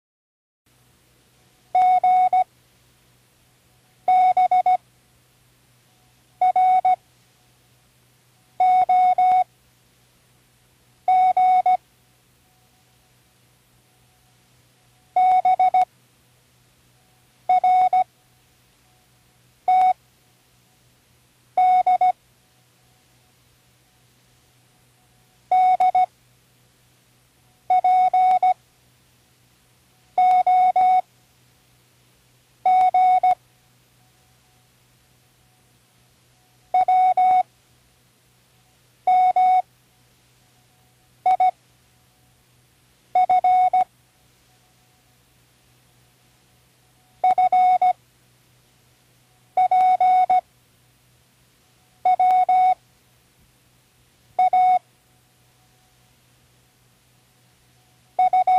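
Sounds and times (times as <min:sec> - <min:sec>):
morse code beeps for learning: 0:01.8 - 0:02.5, 0:04.1 - 0:04.8, 0:06.4 - 0:07.0, 0:08.6 - 0:09.4, 0:11.1 - 0:11.8, 0:15.2 - 0:15.9, 0:17.5 - 0:18.1, 0:19.7 - 0:20.0, 0:21.6 - 0:22.2, 0:25.5 - 0:26.1, 0:27.7 - 0:28.6, 0:30.2 - 0:31.0, 0:32.7 - 0:33.4, 0:36.8 - 0:37.4, 0:39.1 - 0:39.6, 0:41.3 - 0:41.6, 0:43.2 - 0:43.9, 0:47.2 - 0:48.0, 0:49.6 - 0:50.4, 0:52.1 - 0:52.8, 0:54.4 - 0:54.8, 0:58.2 - 0:58.5.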